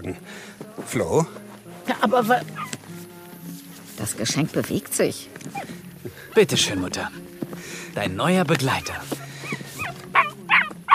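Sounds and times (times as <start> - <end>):
speech: 0.0 - 2.6, 4.0 - 7.2, 7.9 - 9.2
small dog yapping barks: 9.8 - 10.9.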